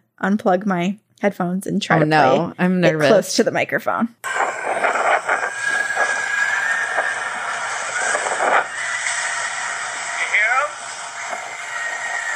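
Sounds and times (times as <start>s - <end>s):
speech: 0.2s - 4.3s
purported dolphin singing with squealing scream-like whistles: 4.3s - 12.3s
steady hiss: 4.3s - 12.3s.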